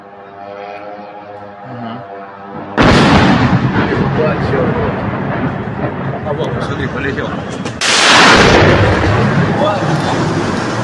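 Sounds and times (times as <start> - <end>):
powerful explosion of an incoming strike with rumbling roar and debris: 2.6 - 10.8
speech: 4.1 - 4.8, 6.3 - 7.8.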